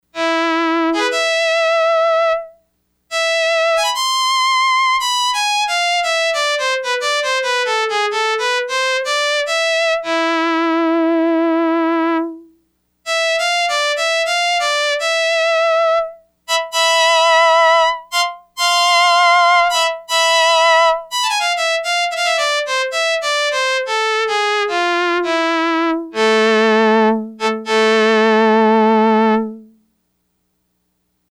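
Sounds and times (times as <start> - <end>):
solo violin patch on Yamaha DX100 synthesizer: 0.2 - 12.5, 13.1 - 29.8.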